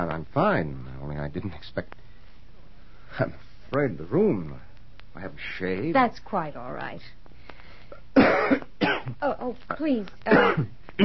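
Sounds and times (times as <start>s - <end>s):
speech: 0.0s - 2.0s, 3.1s - 7.2s, 8.2s - 11.0s
harsh rasping coughs: 8.2s - 9.2s, 10.3s - 11.0s.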